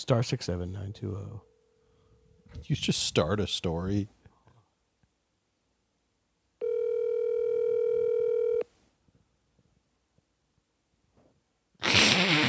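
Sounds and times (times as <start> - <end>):
speech: 0.0 - 1.5, 2.5 - 4.2
telephone ringing tone: 6.6 - 8.7
loud noisy burst: 11.8 - 12.4.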